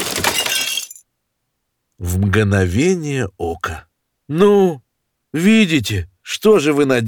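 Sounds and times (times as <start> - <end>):
suitcase smashed open: 0.0 - 0.9
china cup shattering: 0.0 - 1.0
speech: 2.0 - 7.0.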